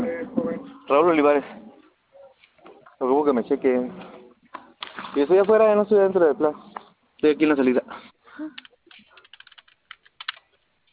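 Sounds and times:
speech: 0.9s - 1.6s, 3.0s - 4.2s, 5.1s - 8.6s
typing on a computer keyboard: 8.5s - 10.9s.

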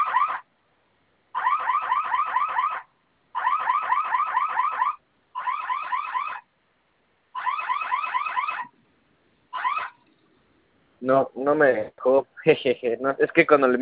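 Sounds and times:
electronic security alarm warbling siren: 0.0s - 0.4s, 1.4s - 6.4s, 7.4s - 8.7s, 9.6s - 10.0s
speech: 11.0s - 13.8s.

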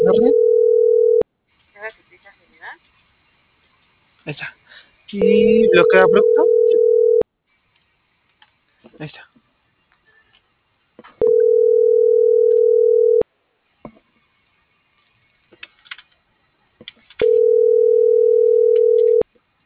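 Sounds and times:
ringback tone of an unanswered telephone call: 0.0s - 1.2s, 5.2s - 7.2s, 11.2s - 13.2s, 17.2s - 19.2s
speech: 0.1s - 0.4s, 4.2s - 6.9s, 9.0s - 9.3s.

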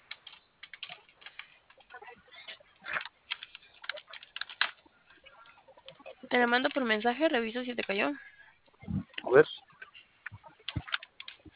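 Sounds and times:
typing on a keyboard: 0.0s - 2.0s, 3.0s - 4.8s, 10.6s - 11.5s
speech: 6.3s - 8.3s, 9.3s - 9.5s.

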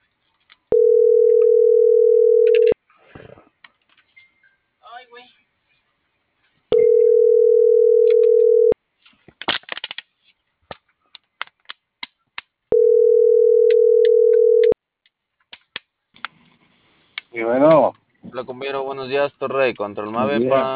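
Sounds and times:
telephone busy signal on a call that won't go through: 0.7s - 2.8s, 6.8s - 8.8s, 12.7s - 14.8s
speech: 18.4s - 20.7s.

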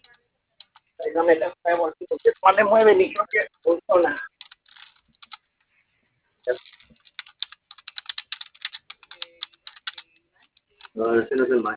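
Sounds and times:
children typing rapidly on a plastic computer keyboard: 0.0s - 0.9s, 4.3s - 5.4s, 6.6s - 11.0s
speech: 1.0s - 4.3s, 6.4s - 6.7s, 11.0s - 11.7s.

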